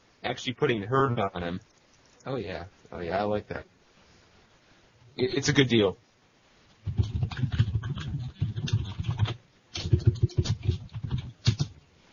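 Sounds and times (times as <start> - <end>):
speech: 0.2 - 3.7, 5.2 - 6.0
fast typing on a computer keyboard: 6.8 - 11.8.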